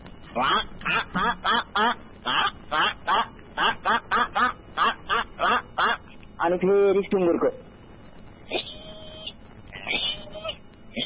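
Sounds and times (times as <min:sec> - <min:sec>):
speech: 0:00.4 - 0:02.8, 0:06.5 - 0:07.6
duck quacking: 0:00.4 - 0:06.1.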